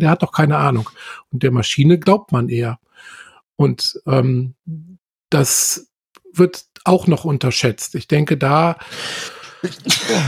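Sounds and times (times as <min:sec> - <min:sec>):
speech: 0:00.0 - 0:10.2
person sneezing forcefully: 0:09.7 - 0:10.2.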